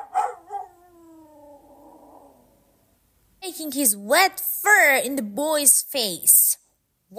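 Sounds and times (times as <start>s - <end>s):
dog barking: 0.0s - 0.7s
dog howling whine: 0.0s - 2.6s
speech: 3.5s - 7.1s.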